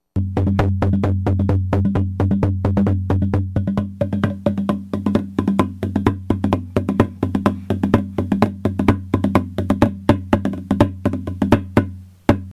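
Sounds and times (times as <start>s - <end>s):
kamitaiko drum: 0.2s - 12.5s.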